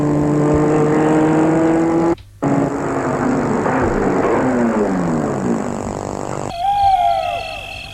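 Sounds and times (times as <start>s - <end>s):
car engine humming while driving along a small forest road at night: 0.0s - 7.9s
hooting or whistling tone: 6.5s - 7.9s.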